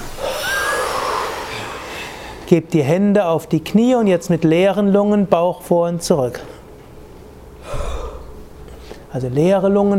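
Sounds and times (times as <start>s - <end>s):
forceful exhale through the mouth during Agni Sara yoga breathing exercise: 0.0s - 2.4s, 7.6s - 9.1s
speech: 2.5s - 6.5s, 9.2s - 9.9s.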